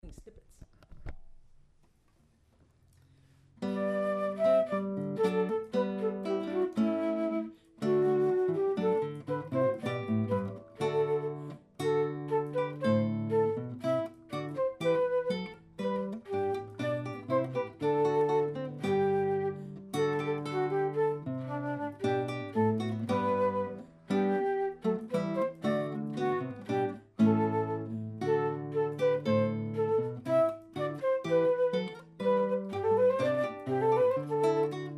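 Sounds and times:
flute playing a Renaissance English song: 0:03.6 - 0:34.9.

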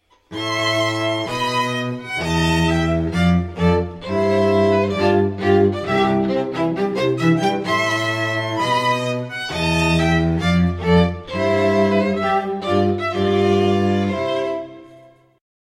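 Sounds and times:
string quartet: 0:00.2 - 0:15.4.

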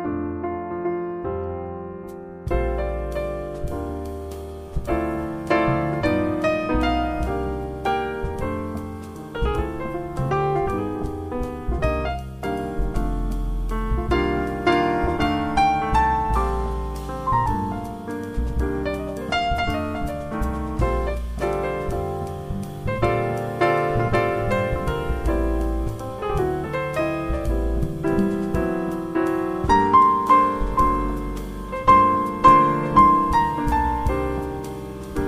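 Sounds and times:
soft jazz trio instrumental by a cover band for cocktail dinner ambiance: 0:00.2 - 0:35.2.

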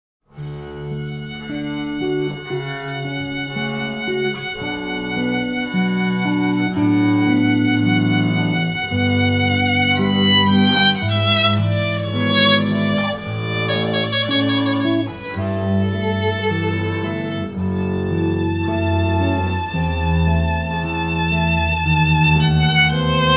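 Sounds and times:
string trio playing: 0:00.3 - 0:23.3.

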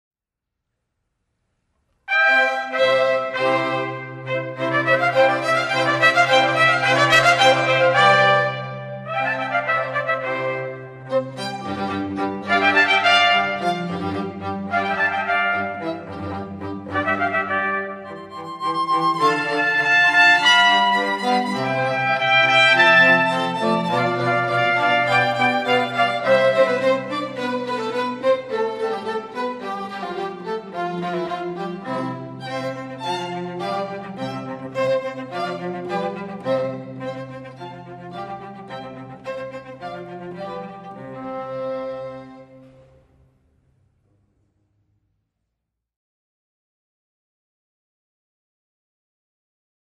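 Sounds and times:
two trumpets playing a concerto: 0:02.1 - 0:10.8, 0:12.4 - 0:26.9
string quartet: 0:02.1 - 0:43.1.

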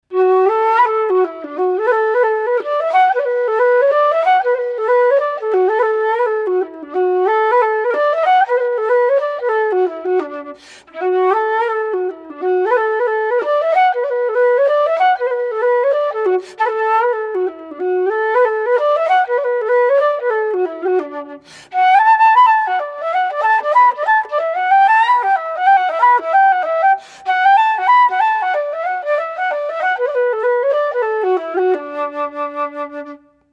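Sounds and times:
solo flute: 0:00.0 - 0:33.5.

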